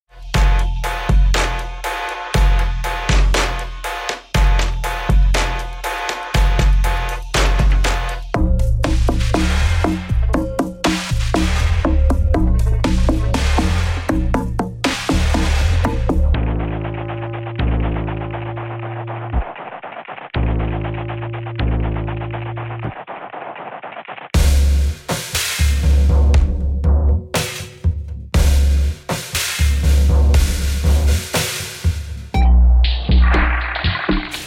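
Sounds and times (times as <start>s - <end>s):
percussion loop: 0.1s - 34.4s.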